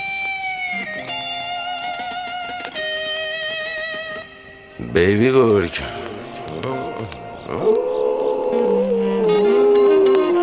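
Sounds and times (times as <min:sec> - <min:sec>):
faint noise: 0:00.0 - 0:10.4
speech: 0:04.9 - 0:06.0
wolf pup howling: 0:07.0 - 0:10.4.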